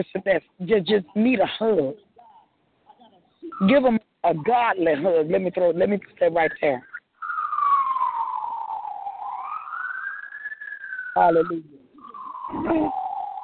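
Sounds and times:
speech: 0:00.0 - 0:02.0, 0:03.5 - 0:06.9, 0:11.2 - 0:11.8, 0:12.5 - 0:13.0
ambulance siren wailing: 0:07.2 - 0:13.4.

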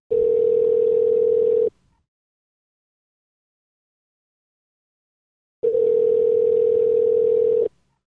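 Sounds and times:
telephone ringback tone during call: 0:00.1 - 0:01.7, 0:05.6 - 0:07.7.

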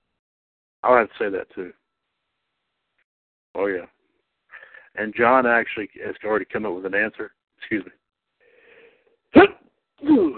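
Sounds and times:
speech: 0:00.8 - 0:01.8, 0:03.6 - 0:04.0, 0:05.0 - 0:08.0, 0:09.3 - 0:10.3
person sneezing: 0:09.4 - 0:10.3.

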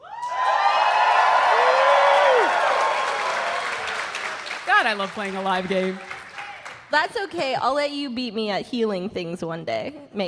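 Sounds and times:
crowd cheering with whoops and shouts: 0:00.0 - 0:07.4
sustained applause: 0:00.2 - 0:07.3
speech: 0:04.8 - 0:06.1, 0:06.9 - 0:10.2.

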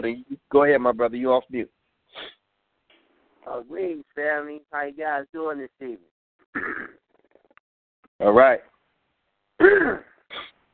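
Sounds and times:
speech: 0:00.0 - 0:02.4, 0:03.4 - 0:06.8, 0:08.2 - 0:08.7, 0:09.6 - 0:10.5
person clearing throat with a rough gravelly rasp: 0:06.6 - 0:07.0, 0:09.6 - 0:10.5.

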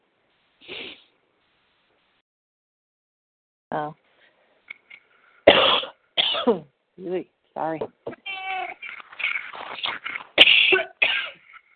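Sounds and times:
speech: 0:00.6 - 0:01.0, 0:03.7 - 0:04.0, 0:06.4 - 0:08.0
harsh coughing bursts: 0:05.5 - 0:06.7, 0:09.9 - 0:11.6.

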